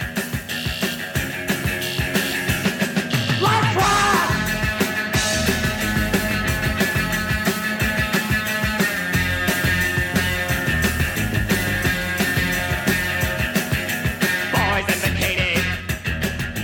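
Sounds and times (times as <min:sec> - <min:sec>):
pounding drums: 0:00.0 - 0:16.6
rock band playing a single version of a song: 0:00.0 - 0:16.6
electric guitar soloing: 0:03.3 - 0:14.6.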